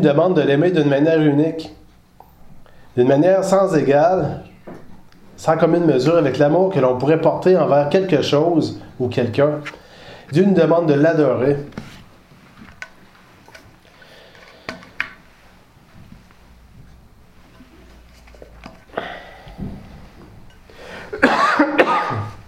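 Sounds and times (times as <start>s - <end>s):
speech: 0.0s - 1.8s, 3.0s - 4.8s, 5.4s - 11.9s
single person coughing: 21.1s - 22.4s.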